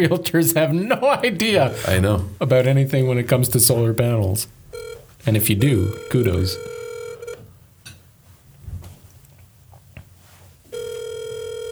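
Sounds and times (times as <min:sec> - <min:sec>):
speech: 0:00.0 - 0:06.8
low noise: 0:00.0 - 0:11.6
buzzy telephone ringback tones on speakerphone: 0:01.4 - 0:02.1, 0:04.7 - 0:07.5, 0:10.7 - 0:11.6.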